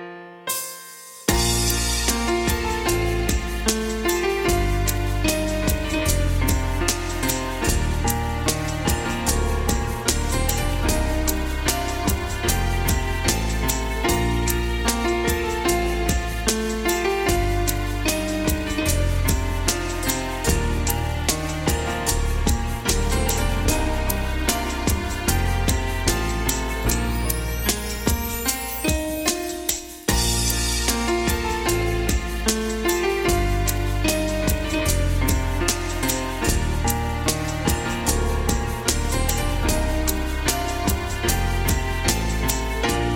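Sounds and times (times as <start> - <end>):
jingle: 0.5 - 43.1.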